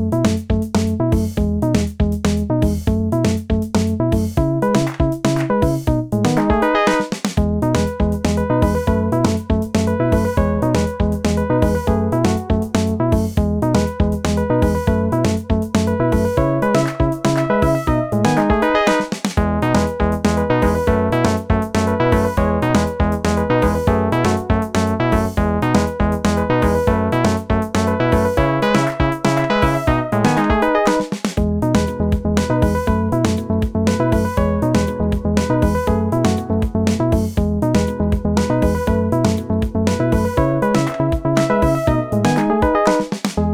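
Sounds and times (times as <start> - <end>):
bouncy piano: 0.2 - 43.4.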